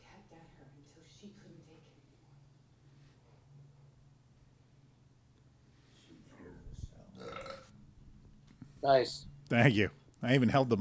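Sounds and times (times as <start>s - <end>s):
loud voiced burp: 7.2s - 7.7s
speech: 8.8s - 10.7s.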